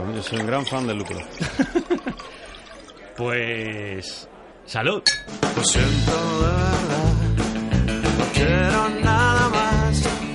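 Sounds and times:
beer pouring into a glass at a roadside bar: 0.0s - 3.7s
speech: 0.1s - 2.4s, 3.2s - 7.4s, 8.2s - 10.2s
person laughing: 1.4s - 2.2s.

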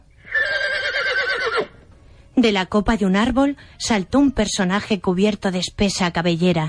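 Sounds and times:
horse whinnying after stopping: 0.2s - 1.8s
speech: 2.4s - 6.6s.

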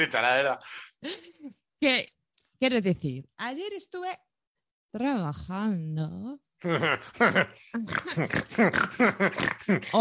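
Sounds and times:
speech: 0.0s - 4.3s, 4.9s - 9.9s
person laughing in a snorting grunting way imitating a pig's oink: 6.6s - 9.9s.

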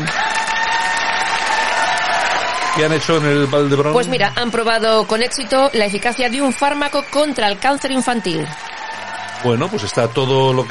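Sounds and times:
crowd applauding: 0.0s - 10.6s
speech: 2.8s - 8.8s, 9.4s - 10.6s
crowd whistles: 4.0s - 5.0s, 5.7s - 7.6s.

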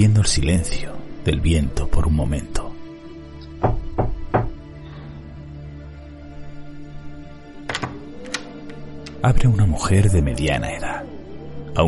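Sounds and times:
speech: 0.0s - 2.6s, 9.2s - 11.1s
gloved hand knocking on wooden door: 3.6s - 4.6s.

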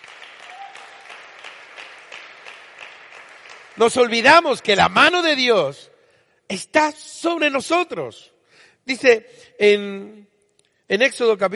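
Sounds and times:
audience applauding: 0.0s - 4.8s
speech: 3.8s - 5.9s, 6.5s - 10.3s, 10.9s - 11.5s.

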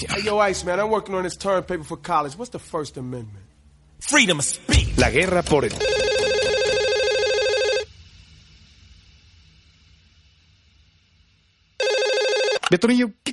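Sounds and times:
speech: 0.0s - 3.4s, 4.0s - 6.0s, 12.7s - 13.3s
telephone bell ringing: 5.8s - 7.9s, 11.8s - 12.6s.

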